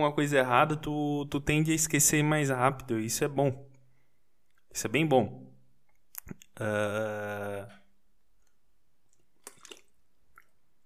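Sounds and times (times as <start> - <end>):
speech: 0.0 - 3.7, 4.7 - 5.4, 6.3 - 7.8
person sipping water and swallowing: 6.1 - 6.6, 9.1 - 10.8.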